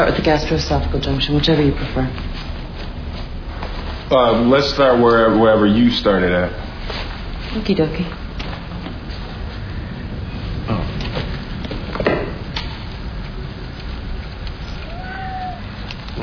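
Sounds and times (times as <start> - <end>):
speech: 0.0 - 2.5, 4.1 - 6.6, 7.6 - 8.2
steady hiss: 0.0 - 16.2
cat meowing: 14.6 - 16.0.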